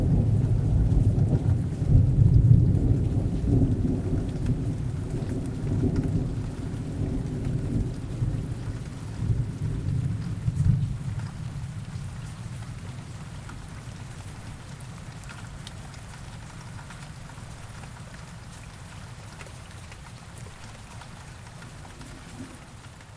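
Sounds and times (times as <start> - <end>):
deep roll of thunder: 0.0 - 12.6
steady rain: 0.0 - 23.1.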